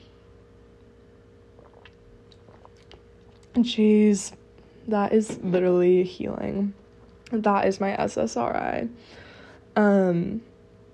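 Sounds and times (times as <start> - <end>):
steady low hum: 0.0 - 10.9
person sipping and swallowing an energy drink: 1.5 - 3.6
speech: 3.6 - 9.2, 9.8 - 10.5.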